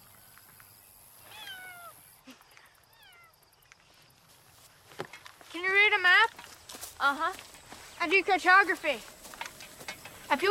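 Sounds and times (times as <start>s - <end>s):
cat meowing: 1.2s - 2.0s, 3.0s - 3.3s
speech: 7.0s - 9.2s.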